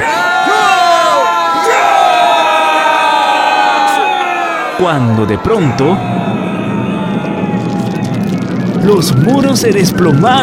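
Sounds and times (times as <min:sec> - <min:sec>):
individual yells: 0:00.0 - 0:07.2
large crowd of people shouting: 0:00.0 - 0:08.5
speech: 0:04.8 - 0:06.4, 0:08.8 - 0:10.4.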